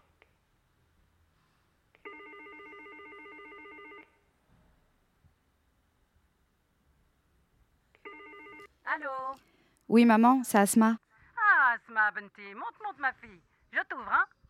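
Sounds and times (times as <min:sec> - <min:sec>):
electronic ringing tone of an outgoing telephone call: 0:02.0 - 0:04.3, 0:08.0 - 0:08.7
speech: 0:08.9 - 0:11.0, 0:11.8 - 0:14.4.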